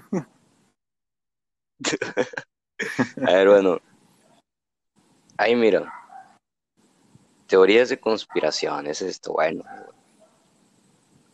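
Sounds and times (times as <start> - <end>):
speech: 0.1 - 0.3, 1.8 - 2.4, 3.2 - 3.8, 5.4 - 6.0, 7.5 - 10.0
laughter: 1.8 - 3.4
dog barking: 5.8 - 6.4, 8.2 - 8.7, 9.5 - 10.4.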